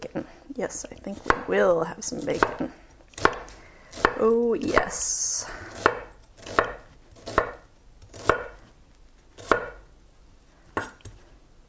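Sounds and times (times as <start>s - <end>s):
speech: 0.6s - 2.8s, 4.2s - 5.6s
knife chopping an onion: 1.1s - 1.6s, 2.2s - 5.0s, 5.7s - 8.7s, 9.4s - 9.9s.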